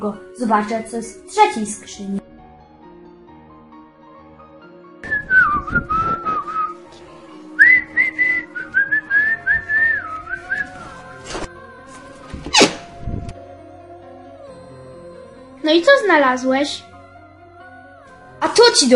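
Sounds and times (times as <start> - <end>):
speech: 0.0 - 2.3, 15.7 - 16.9, 18.6 - 18.9
whistle blown in wavering warbling bursts: 5.0 - 6.8, 7.6 - 10.8.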